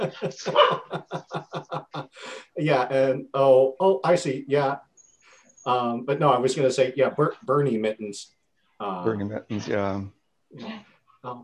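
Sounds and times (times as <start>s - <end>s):
speech: 0.0s - 1.4s, 2.6s - 4.9s, 5.6s - 11.4s
laughter: 0.0s - 3.5s
dogs barking sharp yappy barks: 0.4s - 1.4s.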